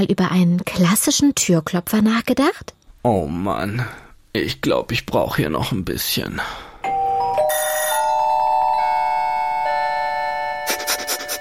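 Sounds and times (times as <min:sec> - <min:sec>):
speech: 0:00.0 - 0:06.7
doorbell with bright sustained chime tones: 0:06.8 - 0:11.3.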